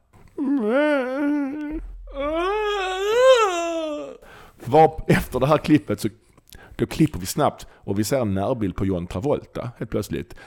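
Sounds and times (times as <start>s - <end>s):
voice imitating a whimpering scream from a film: 0.4s - 4.2s
speech: 4.7s - 6.2s, 6.8s - 10.4s.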